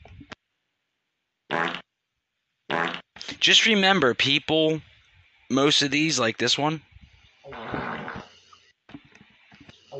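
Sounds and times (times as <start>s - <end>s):
recorded fart bursts played back from a phone: 1.5s - 1.8s, 2.7s - 3.2s, 7.5s - 8.3s
speech: 3.4s - 4.9s, 5.5s - 6.9s.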